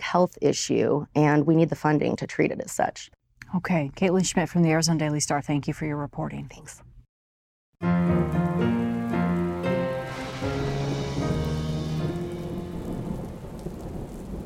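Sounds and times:
speech: 0:00.1 - 0:06.9, 0:07.8 - 0:08.8
heavy monsoon rain pouring in Tucson Arizona in July: 0:07.8 - 0:14.4
loud rolling thunder: 0:08.2 - 0:14.4.

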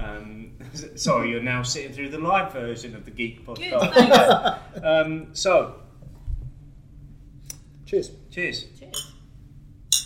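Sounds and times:
speech: 0:00.8 - 0:05.8, 0:07.9 - 0:09.1
laughter: 0:03.8 - 0:04.9
glasses clinking together in a toast: 0:08.9 - 0:09.2.

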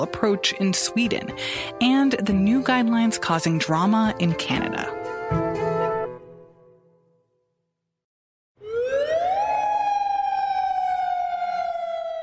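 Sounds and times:
speech: 0:00.0 - 0:05.1
curfew air-raid siren wailing in Jordan during lockdown: 0:08.6 - 0:12.2.

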